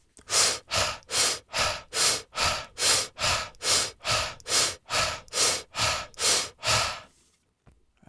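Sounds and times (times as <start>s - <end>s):
rapid forceful breathing during breathwork demonstration: 0.2s - 7.2s.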